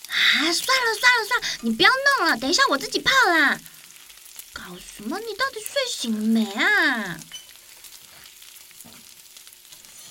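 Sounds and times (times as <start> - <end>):
food frying in a wok: 0.0 - 10.0
speech: 0.4 - 3.7, 4.6 - 7.3
stirring scrapes in a wok: 9.7 - 10.0.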